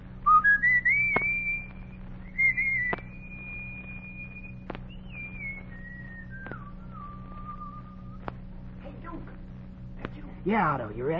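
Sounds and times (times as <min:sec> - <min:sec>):
low steady hum: 0:00.0 - 0:11.1
boy whistling a slow simple tune on a street in Washington D.C.: 0:00.2 - 0:08.2
faint clicks: 0:01.0 - 0:07.6, 0:08.2 - 0:08.6
speech: 0:10.5 - 0:11.1.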